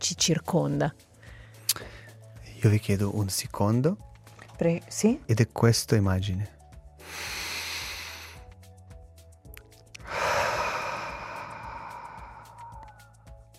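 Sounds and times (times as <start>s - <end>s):
speech: 0.1s - 1.1s, 2.6s - 7.3s
deep breathing in a breathing exercise: 7.0s - 8.5s, 10.0s - 13.2s.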